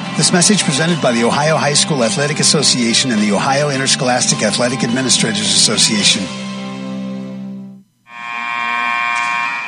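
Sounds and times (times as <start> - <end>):
speech: 0.2 - 6.4
sports arena buzzer ending a volleyball set: 7.8 - 9.6.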